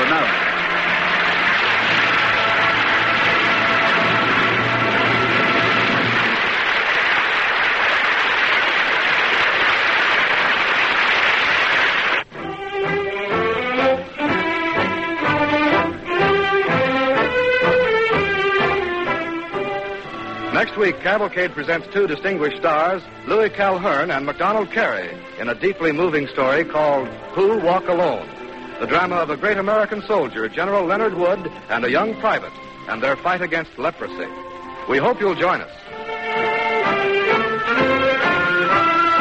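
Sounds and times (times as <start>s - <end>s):
orchestral music: 0.0s - 9.1s, 12.2s - 39.1s
large theater audience applauding a performance: 0.0s - 21.3s, 36.0s - 39.1s
speech: 21.0s - 35.8s.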